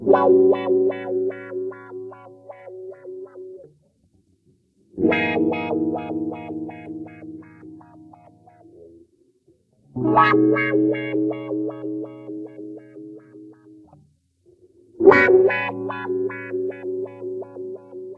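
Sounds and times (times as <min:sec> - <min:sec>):
guitar loops with master wah: 0:00.0 - 0:03.8, 0:05.0 - 0:09.0, 0:10.0 - 0:14.0, 0:15.0 - 0:18.1.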